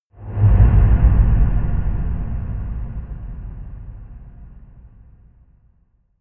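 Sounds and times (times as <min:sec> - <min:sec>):
whoosh with reverb: 0:00.2 - 0:05.1.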